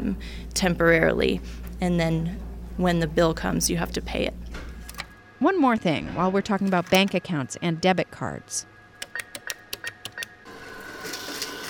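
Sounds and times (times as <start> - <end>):
speech: 0.1 - 4.7, 5.4 - 8.7
ATM mechanical clicks: 9.0 - 10.4
ATM whirring as notes feed out: 9.0 - 11.6.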